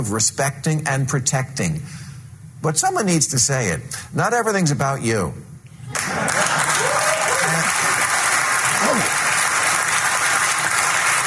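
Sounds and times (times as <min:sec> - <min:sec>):
speech: 0:00.0 - 0:06.4
large crowd applauding: 0:05.9 - 0:11.2.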